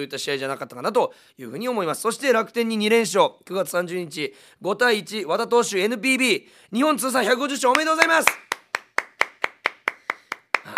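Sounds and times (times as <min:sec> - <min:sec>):
speech: 0:00.0 - 0:08.5
female staff member clapping hands in a studio: 0:07.7 - 0:10.7.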